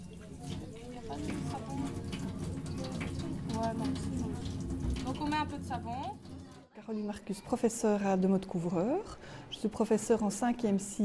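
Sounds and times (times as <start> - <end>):
water running from a tap while washing a baby: 0.0 - 6.7
speech: 1.1 - 1.9, 3.6 - 11.0.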